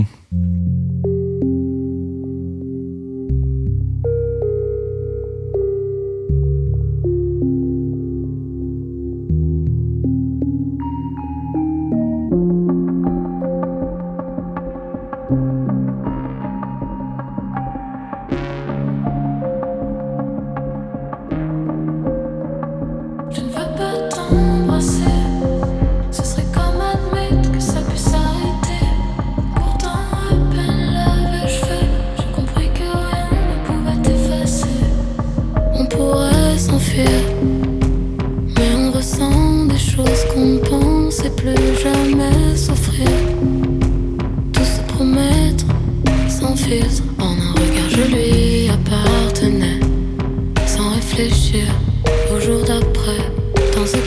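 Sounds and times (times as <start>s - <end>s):
soft sustained keyboard chords in a song's instrumental opening: 0.0s - 54.0s
percussion in a song's instrumental opening: 12.3s - 54.0s.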